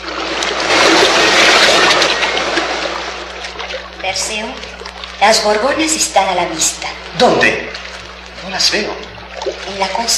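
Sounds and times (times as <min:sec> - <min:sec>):
heavy sea waves crashing against rocks: 0:00.0 - 0:10.1
speech: 0:04.1 - 0:07.7, 0:08.5 - 0:10.1.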